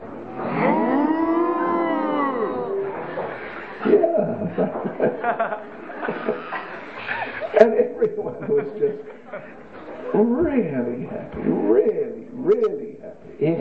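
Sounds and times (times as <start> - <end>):
person imitating a long wavering cow moo: 0.3 - 3.1
person making chuckling moo-like vocal sounds: 3.6 - 10.1
speech: 7.6 - 11.8.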